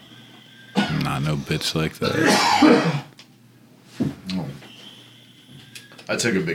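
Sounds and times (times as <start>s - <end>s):
person coughing: 0.8s - 1.1s, 2.0s - 3.1s
speech: 1.0s - 3.1s, 6.1s - 6.5s.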